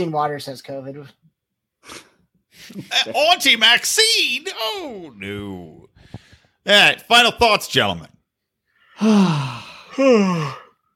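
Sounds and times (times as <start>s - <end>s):
speech: 0.0s - 8.2s, 9.0s - 10.6s
person yawning: 9.0s - 10.8s.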